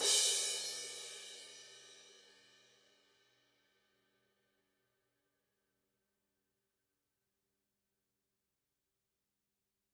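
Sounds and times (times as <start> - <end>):
crash cymbal: 0.0 - 2.6.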